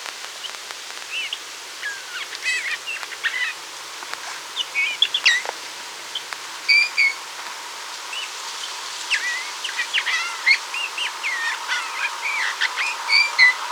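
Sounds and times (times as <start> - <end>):
Eurasian bullfinch Pyrrhula pyrrhula soft whistled calls and twittering: 1.1 - 3.6, 4.5 - 5.5, 6.1 - 7.3, 9.1 - 13.6.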